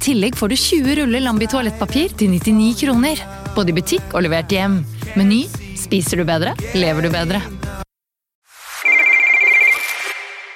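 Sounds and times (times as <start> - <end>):
speech: 0.0 - 7.6
electronic telephone ringtone for an incoming caller: 8.8 - 10.4.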